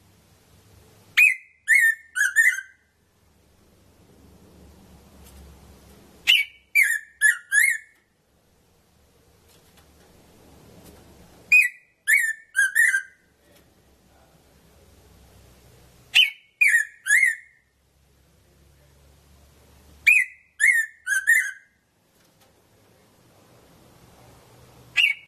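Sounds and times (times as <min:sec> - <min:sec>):
red-throated parrotfinch sharp high chip calls: 0:01.2 - 0:02.8, 0:06.2 - 0:08.0, 0:11.5 - 0:13.2, 0:16.1 - 0:17.6, 0:20.0 - 0:21.7, 0:24.9 - 0:25.1.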